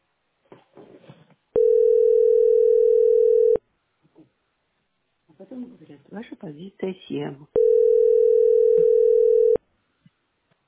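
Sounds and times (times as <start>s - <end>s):
telephone ringing tone while waiting to book a doctor's appointment: 1.6s - 3.6s, 7.6s - 9.6s
speech: 6.0s - 7.6s.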